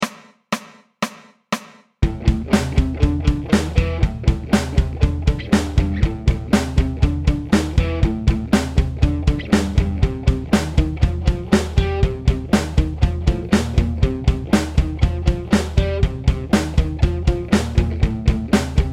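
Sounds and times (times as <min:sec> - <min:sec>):
bass guitar groove played with a pick: 0:02.0 - 0:18.9.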